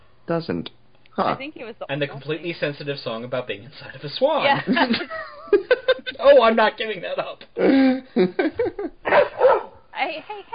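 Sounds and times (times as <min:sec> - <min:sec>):
speech: 0:00.3 - 0:10.5
laughter: 0:04.4 - 0:06.5, 0:07.6 - 0:09.0
dog barking: 0:09.1 - 0:09.8.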